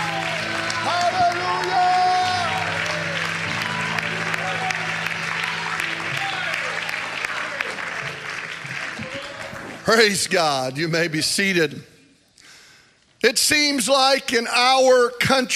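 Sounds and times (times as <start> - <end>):
cheering voices and whoops: 0.0 - 9.6
audience applause: 0.0 - 10.7
speech: 9.9 - 11.9, 13.3 - 15.5.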